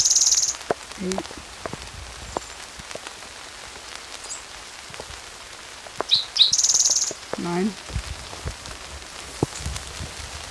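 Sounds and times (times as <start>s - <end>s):
bird chirping: 0.0s - 1.2s, 4.2s - 4.5s, 6.0s - 7.6s
rain falling: 0.0s - 10.4s
speech: 1.0s - 1.5s, 7.4s - 8.0s.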